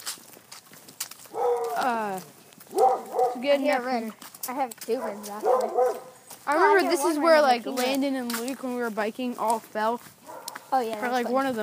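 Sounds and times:
dog barking in a drawn-out whining cry: 1.3s - 1.8s, 2.7s - 3.4s, 5.1s - 6.2s
speech: 1.8s - 2.4s, 3.4s - 11.6s.

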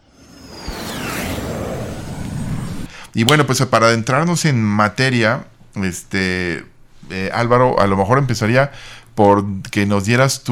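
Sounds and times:
spaceship launch sound effect roar: 0.0s - 3.0s
descending whoosh: 0.0s - 3.3s
speech: 3.2s - 10.5s.

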